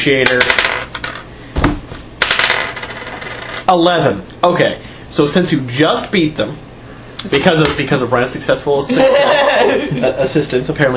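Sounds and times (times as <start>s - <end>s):
speech: 0.0s - 0.7s, 3.7s - 10.9s
dice being rolled on a table: 0.2s - 1.3s, 2.2s - 3.7s
laughter: 8.9s - 10.4s.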